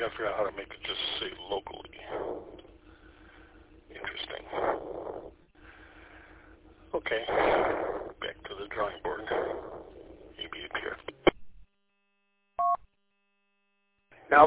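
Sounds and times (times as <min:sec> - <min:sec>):
speech: 0:00.0 - 0:02.5, 0:07.0 - 0:07.8
voices over tinny band-limited radio transmission: 0:00.0 - 0:11.4.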